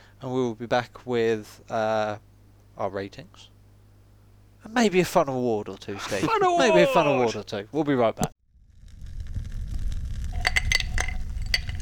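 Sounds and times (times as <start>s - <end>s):
speech: 0.2s - 3.5s, 4.6s - 8.3s
small handcrafted resin dice clinking against a glass: 10.4s - 11.8s.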